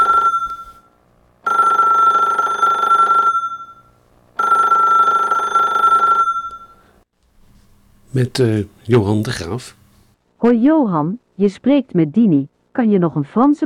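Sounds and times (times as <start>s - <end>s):
telephone ringing: 0.0s - 6.9s
speech: 8.2s - 9.8s, 10.4s - 13.6s.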